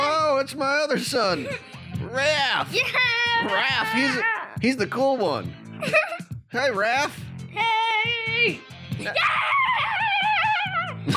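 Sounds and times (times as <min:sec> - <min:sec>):
speech: 0:00.5 - 0:09.9
loud high-pitched wavering scream: 0:09.1 - 0:11.0.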